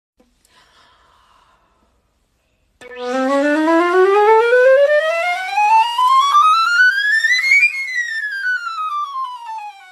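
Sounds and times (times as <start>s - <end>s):
alto flute: 2.8s - 9.9s.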